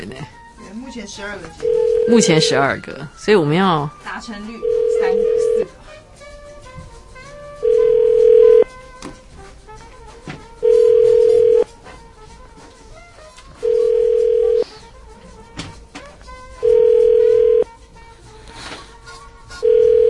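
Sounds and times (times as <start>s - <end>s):
speech: 0.0s - 5.8s
phone ringback tone heard through the handset: 1.6s - 2.6s, 4.6s - 5.7s, 7.6s - 8.7s, 10.6s - 11.7s, 13.6s - 14.7s, 16.6s - 17.7s, 19.6s - 20.0s.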